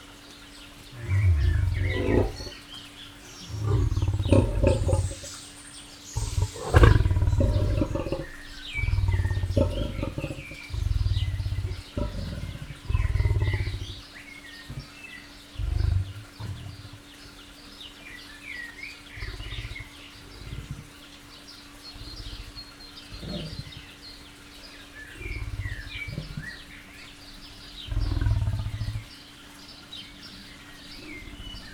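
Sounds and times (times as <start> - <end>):
lion growling gently at Jaszberenyi zoo: 0.7 - 17.6, 18.5 - 31.7.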